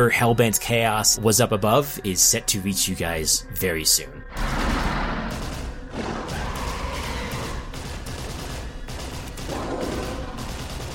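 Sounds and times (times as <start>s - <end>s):
speech: 0.0s - 4.9s
dense chaotic gunfire: 4.3s - 10.9s.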